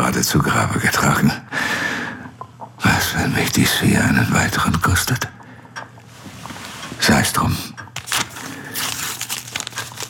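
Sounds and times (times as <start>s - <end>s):
speech: 0.1s - 1.6s, 3.3s - 5.4s, 7.1s - 7.7s
paper envelope crinkling and rustling: 7.9s - 10.0s.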